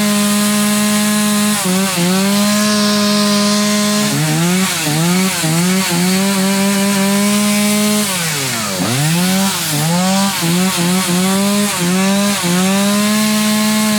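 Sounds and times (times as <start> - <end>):
gas chainsaw: 0.0 - 13.9.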